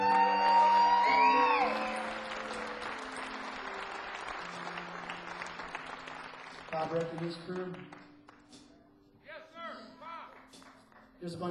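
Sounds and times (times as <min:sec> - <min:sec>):
loud sustained whoop: 0:00.0 - 0:02.3
audience cheering and clapping: 0:00.0 - 0:08.4
speech: 0:06.8 - 0:08.1, 0:11.2 - 0:11.5.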